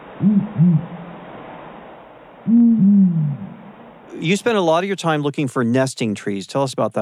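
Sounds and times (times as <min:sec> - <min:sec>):
male and female pair of the world's biggest owls hooting in duet: 0:00.2 - 0:01.0, 0:02.4 - 0:03.6
speech: 0:00.2 - 0:01.0, 0:04.2 - 0:07.0.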